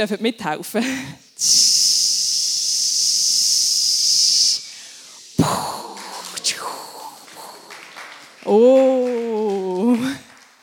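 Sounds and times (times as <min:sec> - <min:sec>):
speech: 0:00.0 - 0:01.8, 0:08.4 - 0:09.1
group of people hissing imitating a rocket launch as part of a prayer: 0:01.3 - 0:08.0.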